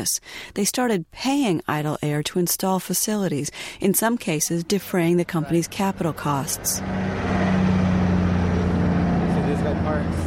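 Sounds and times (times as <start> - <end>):
speech: 0.0 - 7.5
truck engines idling at a truck stop: 3.6 - 10.2
indistinct voices at a truck stop: 4.0 - 6.8.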